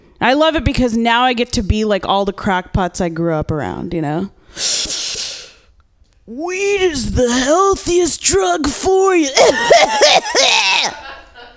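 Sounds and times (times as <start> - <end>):
speech: 0.2 - 4.8, 6.3 - 11.1
person coughing after smoking marijuana: 9.3 - 10.9
laughter: 9.4 - 11.5.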